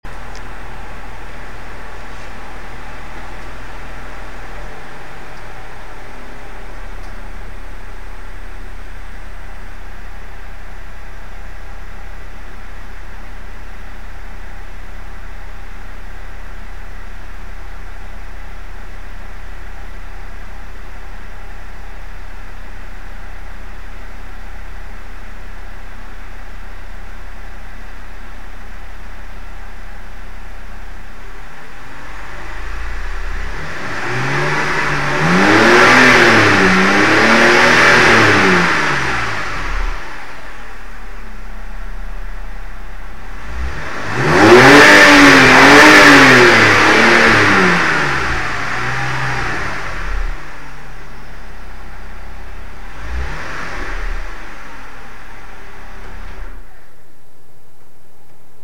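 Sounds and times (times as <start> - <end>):
BMW 630i engine revving: 0.0 - 11.6, 31.3 - 56.9.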